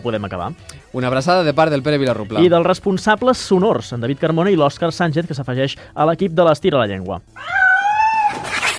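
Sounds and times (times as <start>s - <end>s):
speech: 0.0s - 7.6s
cat meowing: 7.4s - 8.4s
cat giving harsh yowling cries: 7.4s - 8.6s.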